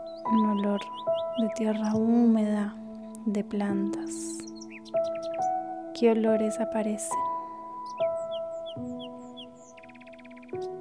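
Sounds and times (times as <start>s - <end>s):
small birds chirping in a forest: 0.0s - 10.7s
speech: 0.2s - 5.4s, 6.0s - 7.3s.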